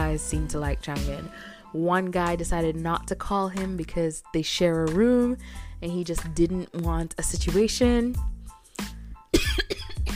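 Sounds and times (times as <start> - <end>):
speech: 0.2 - 8.9
person coughing harshly: 9.3 - 10.1.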